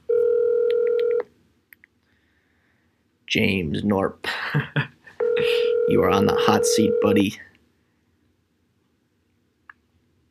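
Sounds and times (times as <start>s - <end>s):
telephone dial tone: 0.1s - 1.2s, 5.2s - 6.0s
speech: 3.3s - 7.5s
laughter: 4.3s - 5.6s.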